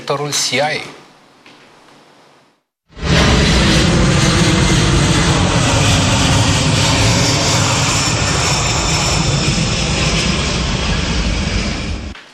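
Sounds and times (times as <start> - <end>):
speech: 0.1 - 1.0
large military transport plane engines roaring: 2.9 - 12.2.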